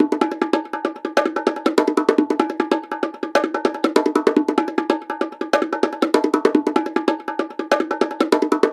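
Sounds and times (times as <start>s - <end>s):
bongo riff: 0.0s - 8.7s.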